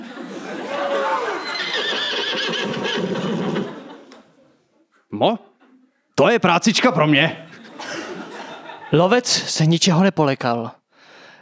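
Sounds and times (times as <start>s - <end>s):
laughter: 0.0s - 4.6s, 7.0s - 9.5s
horse neighing loudly: 0.8s - 4.0s
speech: 5.2s - 5.5s, 6.2s - 7.6s, 8.9s - 10.8s.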